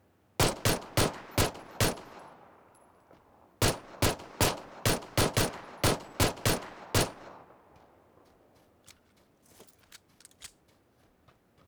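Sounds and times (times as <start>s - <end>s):
P92 gunshots: 0.4s - 2.7s, 3.6s - 8.1s.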